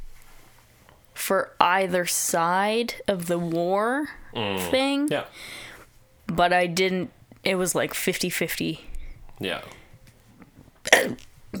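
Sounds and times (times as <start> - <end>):
speech: 1.3 - 5.6, 6.3 - 9.8, 11.0 - 11.5
sudden forceful burp: 4.3 - 5.0, 9.4 - 9.8, 10.8 - 11.5.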